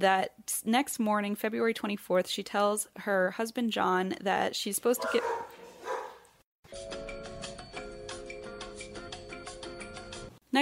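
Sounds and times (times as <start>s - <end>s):
speech: 0.0s - 5.5s
dogs barking: 5.0s - 6.3s.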